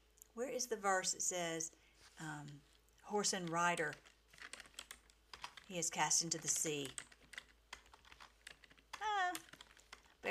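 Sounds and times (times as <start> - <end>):
speech: 0.4 - 4.1, 5.7 - 7.1
faint keystrokes on a computer keyboard: 3.2 - 10.2.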